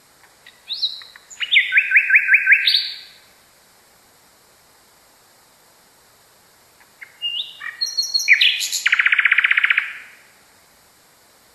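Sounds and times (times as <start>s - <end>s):
nightingale song: 0.4s - 3.3s, 6.8s - 10.2s.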